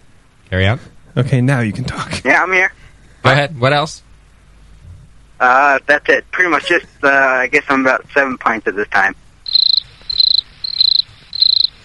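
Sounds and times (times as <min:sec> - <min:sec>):
speech: 0:00.5 - 0:04.1, 0:05.4 - 0:09.2
cricket chirping sound effect: 0:09.4 - 0:11.8.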